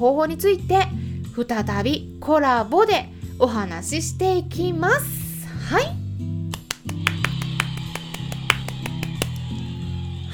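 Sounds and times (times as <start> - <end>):
speech: 0.0 - 5.9
applause sound effect: 6.6 - 9.5.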